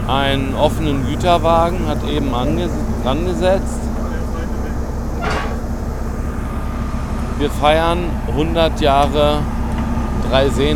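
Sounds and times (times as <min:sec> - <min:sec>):
small old diesel locomotive rumbling at idle while shunting: 0:00.0 - 0:10.7
speech: 0:00.1 - 0:03.9, 0:07.4 - 0:09.6, 0:10.3 - 0:10.7
hissing clank: 0:04.0 - 0:06.2.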